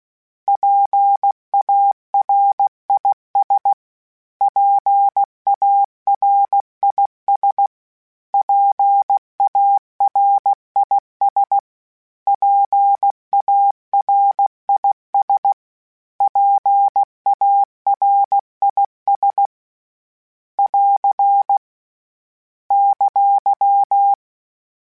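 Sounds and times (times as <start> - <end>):
Morse code calibration beeps: 0.5 - 3.8, 4.5 - 7.7, 8.4 - 11.6, 12.3 - 15.6, 16.2 - 19.5, 20.6 - 21.6, 22.7 - 24.2.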